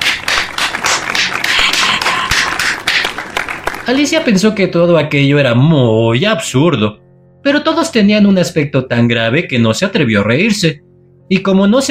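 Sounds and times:
group applause: 0.0s - 4.4s
speech: 3.9s - 11.8s.

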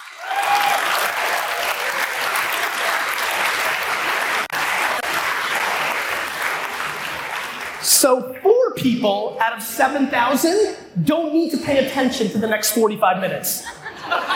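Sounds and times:
large audience of about 7,000 people clapping: 0.0s - 8.1s
speech: 8.0s - 14.2s
laughter: 13.5s - 14.3s.

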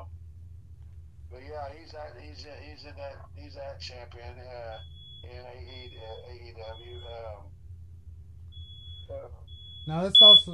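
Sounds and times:
constant low hum: 0.0s - 10.5s
speech: 1.6s - 7.6s, 9.1s - 10.5s
thin high-pitched fire alarm beep: 4.7s - 7.3s, 8.5s - 10.5s.

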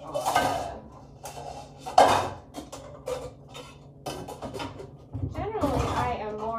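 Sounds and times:
cooking pot and pan clanking while chili is prepared: 0.0s - 6.5s.

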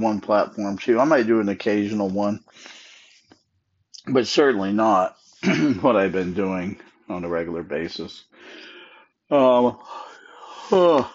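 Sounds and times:
speech: 0.0s - 2.8s, 4.0s - 8.6s, 9.3s - 10.0s, 10.7s - 11.1s
voiced yawn: 9.3s - 11.1s.

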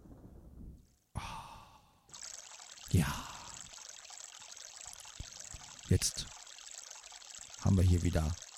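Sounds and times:
babbling brook trickling and splashing: 2.1s - 8.5s
speech: 2.9s - 3.3s, 5.9s - 6.4s, 7.7s - 8.4s.

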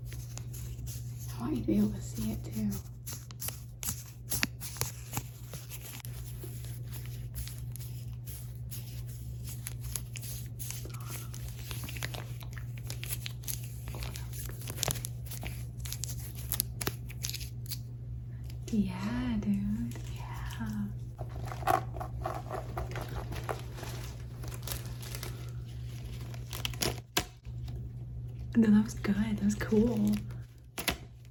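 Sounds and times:
parchment paper crinkling and rustling as it is handled: 0.0s - 17.8s, 19.8s - 27.8s, 29.0s - 31.2s
speech: 1.4s - 2.9s
low hum: 10.6s - 31.2s.

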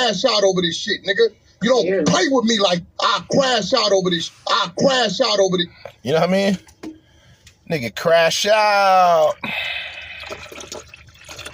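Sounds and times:
speech: 0.0s - 6.7s, 7.7s - 10.9s
juice pouring into a container: 9.1s - 11.5s.

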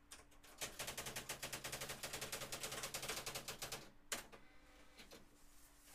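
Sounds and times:
electric typewriter striking keys: 0.1s - 4.3s.

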